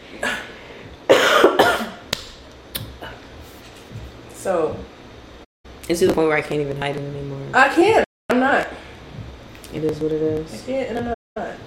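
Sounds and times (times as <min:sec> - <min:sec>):
person clearing throat: 0:01.1 - 0:02.0
person coughing: 0:01.1 - 0:02.0
speech: 0:04.4 - 0:04.9, 0:05.9 - 0:08.1, 0:09.8 - 0:11.6.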